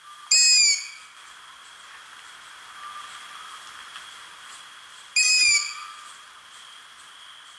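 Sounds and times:
faint hiss: 0:00.0 - 0:07.5
long-eared owl fledgling high-pitched squeaky begging calls: 0:00.3 - 0:01.1, 0:05.2 - 0:06.0.

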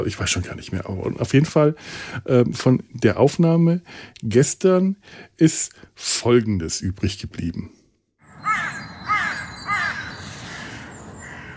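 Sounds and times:
speech: 0:00.0 - 0:07.8
outdoor hiss: 0:00.0 - 0:11.5
crows cawing: 0:08.3 - 0:11.5.

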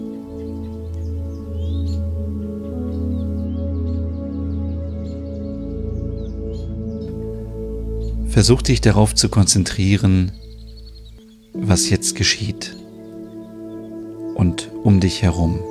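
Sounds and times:
small birds chirping and tweeting: 0:00.0 - 0:15.6
warm tonal drone of soft music: 0:00.0 - 0:15.6
speech: 0:08.4 - 0:10.4, 0:11.7 - 0:12.8, 0:14.4 - 0:15.6.

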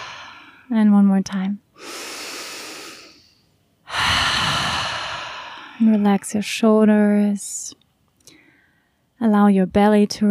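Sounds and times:
deep inhale and exhale through open mouth in a relaxation exercise: 0:00.0 - 0:00.7, 0:01.8 - 0:06.0
speech: 0:00.7 - 0:01.9, 0:05.8 - 0:07.8, 0:09.2 - 0:10.2.

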